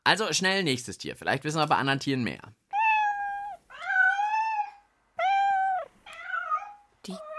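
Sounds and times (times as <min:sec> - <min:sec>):
speech: 0:00.1 - 0:02.6
cat meowing: 0:02.7 - 0:07.3.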